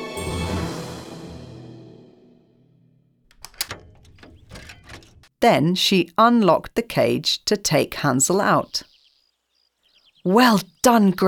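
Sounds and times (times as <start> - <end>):
heavy metal oven door slamming shut: 3.3 - 5.3
quick sharp metal clanks and rattles: 3.3 - 5.3
speech: 5.4 - 8.9, 10.2 - 11.2.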